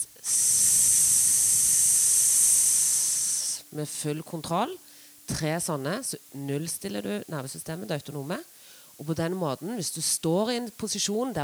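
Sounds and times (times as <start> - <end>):
slow controlled exhale with hissing S sound: 0.0 - 3.7
speech: 3.7 - 11.4.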